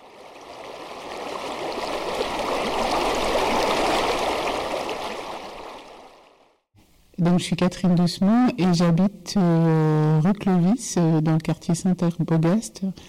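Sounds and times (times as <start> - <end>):
canal water flowing: 0.0 - 6.6
speech: 7.2 - 13.0.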